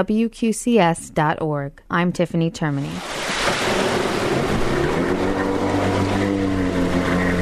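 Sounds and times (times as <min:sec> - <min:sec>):
speech: 0:00.0 - 0:03.8
splashing and rushing choppy water: 0:02.8 - 0:07.4
jet ski engine droning and revving: 0:03.3 - 0:07.4.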